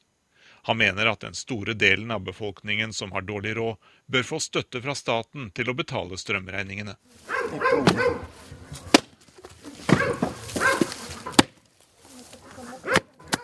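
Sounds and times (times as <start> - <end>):
speech: 0.6 - 8.8
axe strikes splitting firewood in Bulgaria: 7.4 - 13.4.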